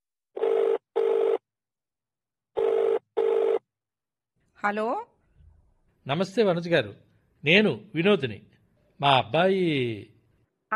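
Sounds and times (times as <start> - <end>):
telephone ringing tone of the call: 0.4 - 1.4, 2.5 - 3.7
speech: 4.6 - 5.1, 6.1 - 10.7.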